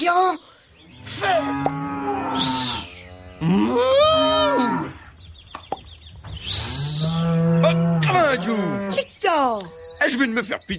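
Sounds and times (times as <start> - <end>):
cows mooing: 0.9 - 5.2, 6.5 - 10.1
speech: 1.1 - 2.5, 3.4 - 4.0, 8.3 - 10.7.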